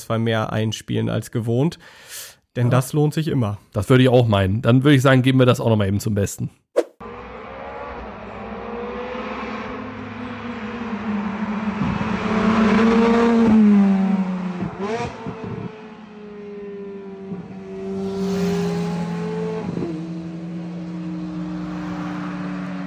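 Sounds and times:
speech: 0:00.1 - 0:06.7
sports car engine roaring while accelerating past and downshifting: 0:07.0 - 0:22.8.

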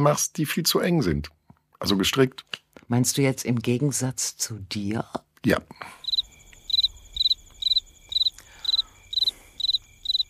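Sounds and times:
speech: 0:00.0 - 0:06.0
cricket chirping: 0:05.7 - 0:10.2.

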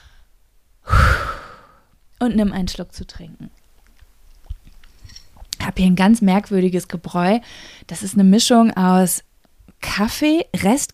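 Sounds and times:
deep exhale: 0:00.0 - 0:01.9
speech: 0:02.2 - 0:03.6, 0:05.8 - 0:10.9.

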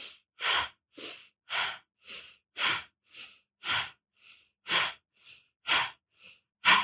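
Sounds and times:
forceful rapid breathing through the nose during a breathing exercise: 0:00.0 - 0:06.8.

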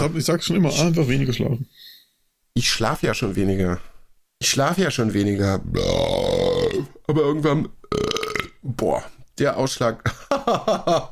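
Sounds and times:
speech: 0:00.0 - 0:01.9, 0:02.6 - 0:11.0
loud voiced burp: 0:05.6 - 0:08.6.

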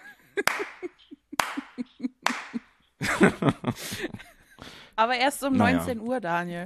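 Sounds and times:
chuckling vocal sounds: 0:00.0 - 0:04.6
noisy laughter or chatter: 0:00.0 - 0:04.6
sharp hand claps: 0:00.4 - 0:02.6
speech: 0:03.2 - 0:04.2, 0:05.0 - 0:06.6.

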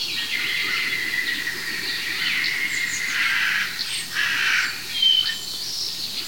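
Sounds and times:
outdoor insect and bird background: 0:00.0 - 0:06.2
carrion crow cawing: 0:03.1 - 0:04.8.

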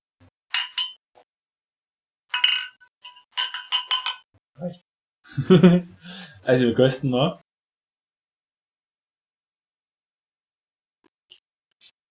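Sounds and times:
glasses clinking together in a toast: 0:00.5 - 0:01.0, 0:02.3 - 0:04.2
speech: 0:04.6 - 0:07.4
laughter: 0:05.3 - 0:06.4.

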